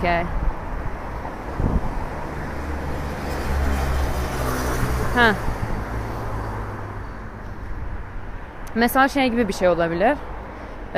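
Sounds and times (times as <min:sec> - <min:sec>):
speech: 0:00.0 - 0:00.4, 0:05.2 - 0:05.5, 0:08.8 - 0:10.3
strong wind buffeting the microphone: 0:00.0 - 0:08.7.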